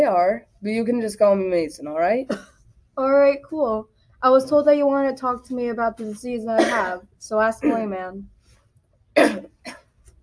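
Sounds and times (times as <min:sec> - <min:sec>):
speech: 0:00.3 - 0:08.3
man clearing throat with a tickle in his throat: 0:06.6 - 0:07.0, 0:07.6 - 0:08.0, 0:09.2 - 0:09.8.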